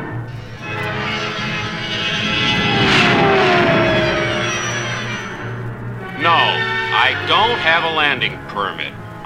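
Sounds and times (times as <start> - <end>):
science-fiction spaceship engines activating: 0.3 - 6.8
speech: 7.6 - 9.2.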